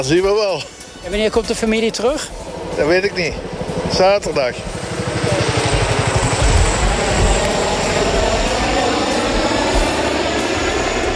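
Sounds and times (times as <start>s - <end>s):
speech: 0.0s - 5.4s
Chinook helicopters carrying water bags to fight a wildfire flying overhead: 0.0s - 11.1s.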